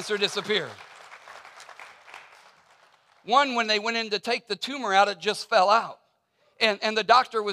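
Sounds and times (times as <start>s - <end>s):
speech: 0.0s - 0.9s, 3.2s - 6.0s, 6.6s - 7.5s
room full of people applauding: 0.0s - 3.2s.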